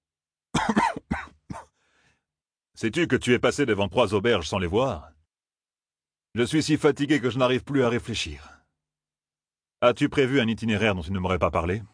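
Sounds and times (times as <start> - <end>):
man's coughing fit: 0.5 - 1.8
speech: 2.8 - 5.2, 6.3 - 8.6, 9.8 - 11.9.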